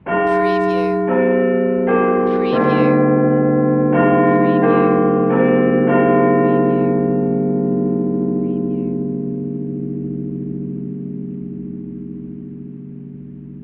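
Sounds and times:
clock tower bell chiming the half hour: 0.0 - 9.6.

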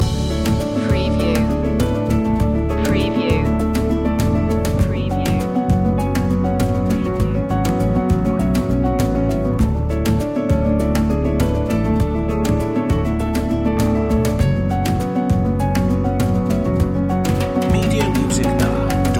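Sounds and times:
chasing piano loop: 0.0 - 19.1.

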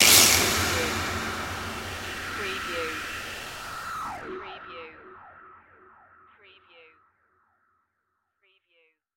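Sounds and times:
distorted production element hit: 0.0 - 6.6.

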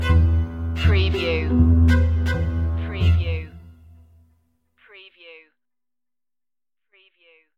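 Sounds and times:
creepy strings stinger: 0.0 - 3.0.

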